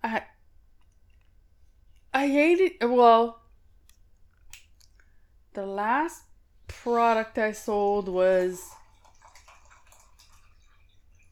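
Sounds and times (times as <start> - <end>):
speech: 2.2 - 3.4, 5.6 - 8.8
thin stream of water pouring into a cup: 6.8 - 11.3.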